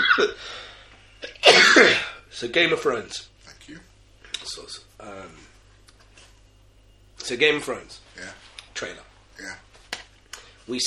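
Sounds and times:
speech: 0.2 - 0.7, 1.4 - 5.5, 7.2 - 9.6, 10.7 - 10.8
person clearing throat: 1.2 - 2.2.

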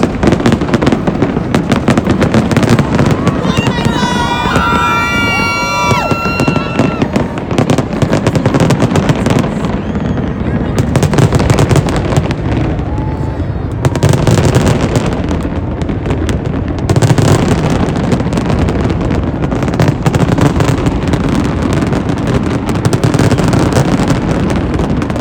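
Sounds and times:
whistling firework rockets rising: 0.0 - 13.5
New Year's Eve fireworks booming and crackling: 0.0 - 25.1
crowd murmuring: 2.1 - 14.2.

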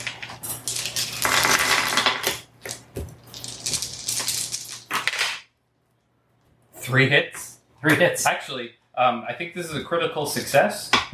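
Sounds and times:
several dice rolled for a tabletop role-playing game: 0.0 - 5.4
speech: 6.9 - 11.1.

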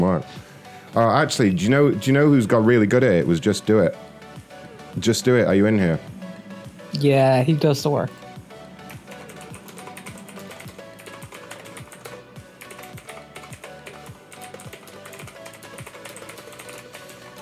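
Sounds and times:
speech: 0.0 - 4.1, 5.0 - 6.2, 6.9 - 8.2
noisy computer keyboard typing: 8.8 - 17.4.

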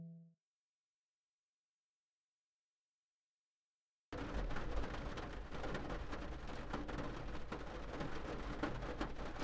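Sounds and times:
heavy rain pattering against a window: 4.2 - 9.4.

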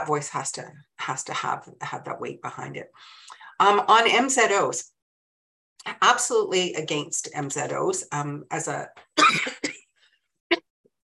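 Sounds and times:
speech: 0.0 - 4.9, 5.8 - 9.7
person recovering from COVID coughing: 9.2 - 9.8.

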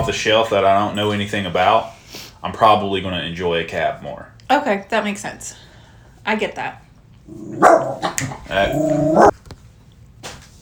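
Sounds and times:
speech: 0.0 - 5.7, 6.3 - 9.4
dog barking and yelping: 7.4 - 9.3.

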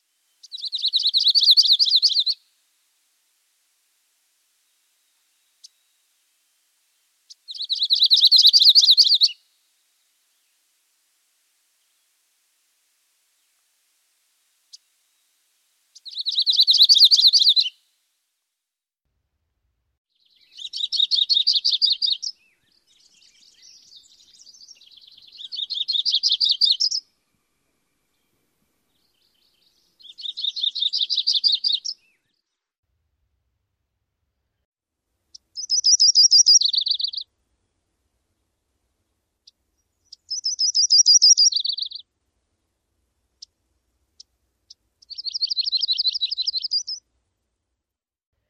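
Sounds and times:
Myrtle yellow-rumped warbler song: 0.2 - 2.5, 4.6 - 10.7, 16.0 - 17.8, 20.1 - 32.6, 35.3 - 37.3, 39.4 - 42.1, 44.2 - 47.0.

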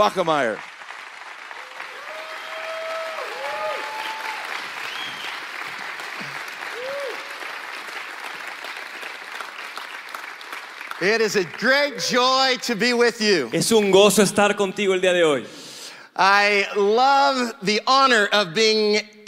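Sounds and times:
speech: 0.0 - 0.7, 11.0 - 15.6, 16.2 - 19.2
audience applause welcoming a guest speaker at a church service: 0.0 - 12.6.

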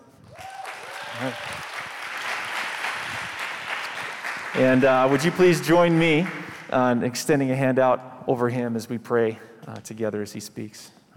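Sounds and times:
church congregation applauding in welcome of a pastor: 0.3 - 6.8
speech: 1.2 - 1.7, 4.6 - 11.0.

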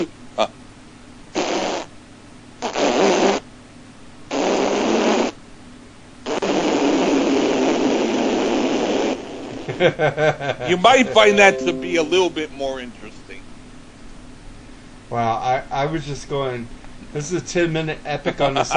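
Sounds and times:
speech: 0.0 - 0.6, 9.8 - 13.1, 15.1 - 18.7
loud raspy fart noises: 1.4 - 1.9, 2.6 - 3.5, 4.3 - 5.4, 6.2 - 9.7
laughter: 9.7 - 11.6.

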